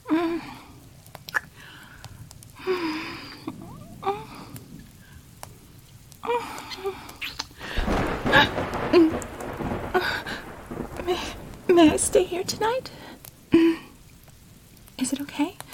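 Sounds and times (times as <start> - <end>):
steady rain pattering: 0.0 - 15.7
deep rolling thunder rumbling: 0.4 - 15.0
speech: 11.8 - 13.0.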